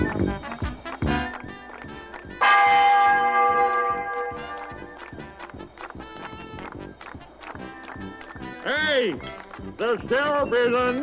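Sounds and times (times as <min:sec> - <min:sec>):
church bell striking loudly: 0:02.4 - 0:05.1
speech: 0:09.0 - 0:11.0.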